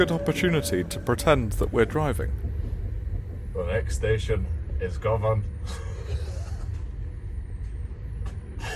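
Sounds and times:
speech: 0.0 - 2.5, 3.6 - 6.2
Clayton shunter locomotive rumbling while moving a subway car: 0.0 - 8.7.

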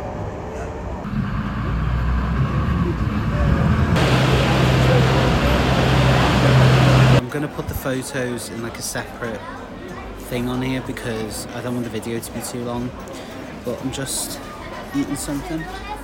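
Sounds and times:
moving boat engine drone: 1.1 - 7.2
broadband water wash from a moving boat: 3.9 - 7.2
speech: 7.9 - 9.5, 10.3 - 15.9.

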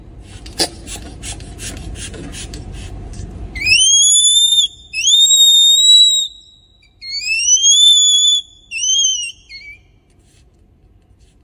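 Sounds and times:
newborn red panda cub calling with high-pitched whistles: 3.6 - 9.9.

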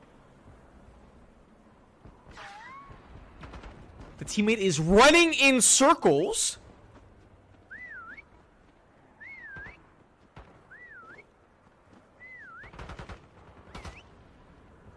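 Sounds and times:
speech: 4.2 - 6.6
wavering melodic whistle tones: 7.7 - 8.3, 9.2 - 9.8, 10.7 - 11.3, 12.2 - 12.8
sharp bursts of gunfire: 12.6 - 14.2.

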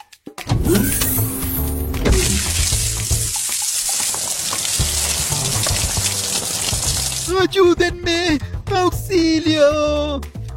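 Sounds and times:
water hose spraying onto a burning house: 0.7 - 7.4
speech: 7.4 - 10.3.

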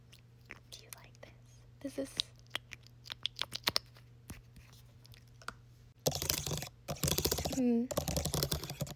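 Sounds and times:
speech: 1.8 - 2.3, 7.6 - 8.1
sharp clicks on a computer keyboard: 6.1 - 8.9.

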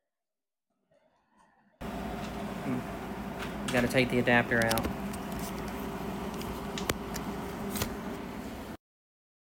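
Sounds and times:
air conditioner humming: 1.8 - 8.8
clicks and handling noises: 3.4 - 8.2
speech: 3.7 - 5.0.

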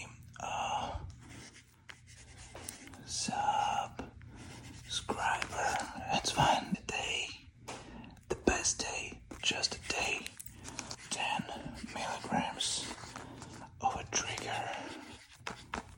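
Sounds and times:
soft whispering voice murmuring: 0.0 - 1.6, 2.6 - 7.5, 8.2 - 15.4
pencil scratching across paper writing a prescription: 1.2 - 3.8, 4.4 - 6.7, 8.5 - 15.9.

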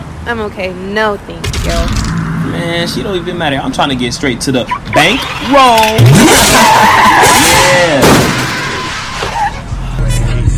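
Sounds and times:
low car engine rumble: 0.0 - 4.7
speech: 0.2 - 2.0, 2.6 - 8.4
car tires skidding with a loud squeal: 4.4 - 9.7.

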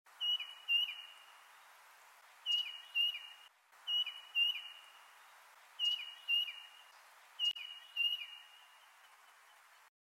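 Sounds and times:
tufted titmouse singing whistled two-note phrases: 0.2 - 1.2, 2.5 - 4.9, 5.8 - 6.8, 7.4 - 8.6.

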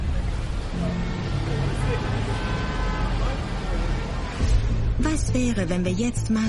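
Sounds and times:
indistinct crowd murmur: 0.0 - 5.0
dense city traffic rumbling in Salzburg Austria: 0.0 - 6.4
speech: 5.0 - 6.4.

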